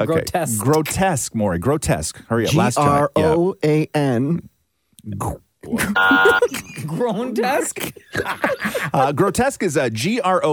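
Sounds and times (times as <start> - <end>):
speech: 0.0 - 10.5
harsh game show wrong-answer buzzer: 6.0 - 6.4.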